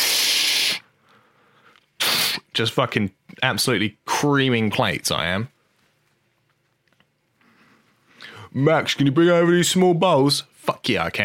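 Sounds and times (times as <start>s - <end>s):
voice imitating a dishwashing spray nozzle hissing: 0.0s - 0.8s, 2.0s - 2.5s
speech: 2.6s - 5.6s, 8.5s - 11.2s.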